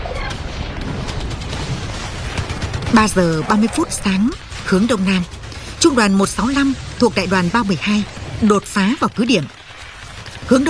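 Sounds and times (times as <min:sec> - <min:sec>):
105 mm and 155 mm artillery guns firing in a battle: 0:00.2 - 0:10.6
speech: 0:02.9 - 0:09.6, 0:10.5 - 0:10.6.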